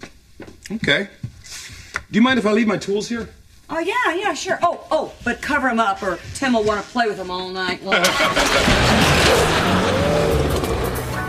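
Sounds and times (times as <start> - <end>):
speech: 0.7 - 1.3, 2.1 - 9.5
old pickup truck engine roaring: 8.0 - 11.2.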